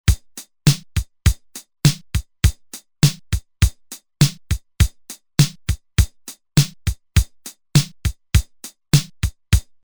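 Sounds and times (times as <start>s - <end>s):
Roland TR-505 drum machine playing an 8 beat rock rhythm: 0.0s - 9.8s.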